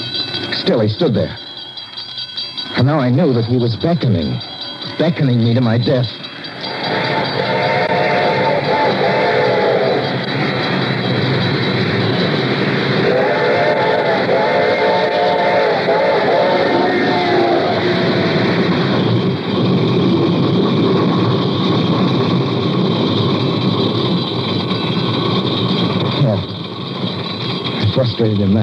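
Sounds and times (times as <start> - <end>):
approaching train rumbling: 0.0 - 28.6
speech: 0.7 - 1.4, 2.8 - 6.2, 28.2 - 28.6
train whistle in long wailing blasts: 6.6 - 11.3, 12.8 - 19.0.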